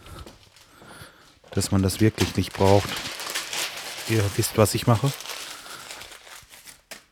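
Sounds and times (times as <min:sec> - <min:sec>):
newspaper being crumpled into small balls for a stove: 0:01.5 - 0:07.0
speech: 0:01.6 - 0:03.1, 0:04.1 - 0:05.3.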